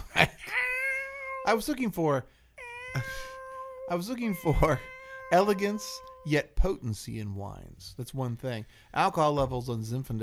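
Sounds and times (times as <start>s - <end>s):
cat meowing: 0.5s - 1.7s, 2.6s - 6.4s
speech: 1.5s - 2.4s, 3.0s - 3.3s, 3.9s - 10.2s.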